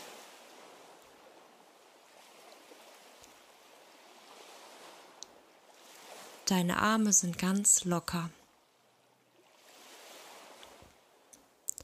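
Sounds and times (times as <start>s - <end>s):
ocean surf washing on a beach: 0.0s - 11.8s
speech: 6.5s - 8.4s
faint clicks: 10.6s - 11.8s.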